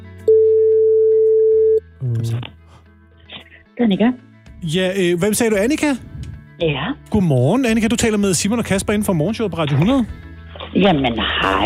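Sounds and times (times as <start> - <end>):
ringback tone on an outgoing phone call: 0.3 - 1.8
speech: 2.2 - 2.6, 3.8 - 11.6.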